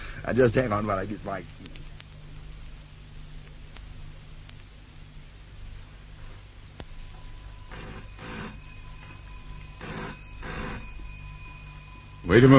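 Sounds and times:
steady low hum: 0.0s - 12.5s
speech: 0.2s - 1.8s, 12.3s - 12.5s
faint clicks: 1.4s - 2.2s, 3.4s - 4.8s
old-fashioned telephone bell ringing: 7.2s - 12.5s.

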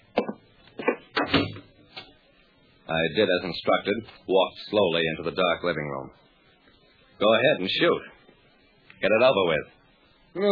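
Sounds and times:
apartment door swinging shut: 1.2s - 1.7s
speech: 2.9s - 6.2s, 7.2s - 8.1s, 9.0s - 10.5s.

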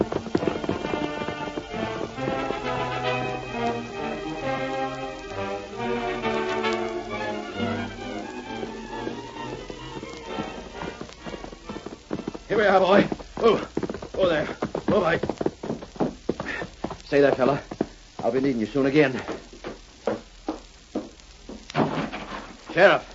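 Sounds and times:
orchestral music bed: 0.0s - 13.1s
horse hoofbeats galloping: 0.0s - 23.1s
speech: 12.8s - 13.6s, 17.1s - 17.7s, 18.3s - 19.3s, 22.8s - 23.1s.

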